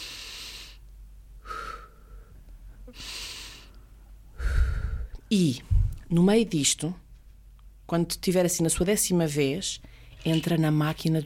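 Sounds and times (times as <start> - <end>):
slow paced breathing in and out during a guided counting exercise: 0.0 - 6.0
speech: 5.3 - 7.0, 7.9 - 11.2.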